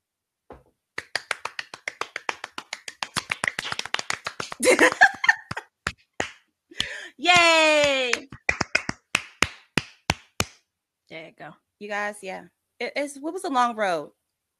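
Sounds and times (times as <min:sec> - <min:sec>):
small group clapping hands: 0:01.0 - 0:10.6
people laughing: 0:04.4 - 0:05.6
speech: 0:04.6 - 0:05.3, 0:11.3 - 0:14.2
people whooping: 0:06.8 - 0:08.3.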